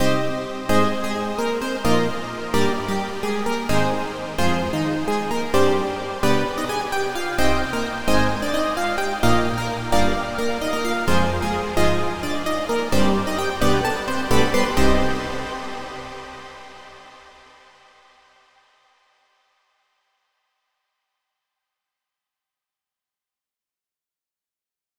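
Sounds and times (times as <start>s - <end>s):
synth mix: 0.0s - 17.1s.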